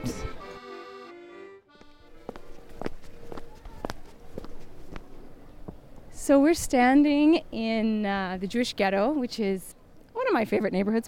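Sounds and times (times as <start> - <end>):
footsteps of people walking: 1.7 - 5.8
speech: 6.3 - 9.8, 10.4 - 11.0.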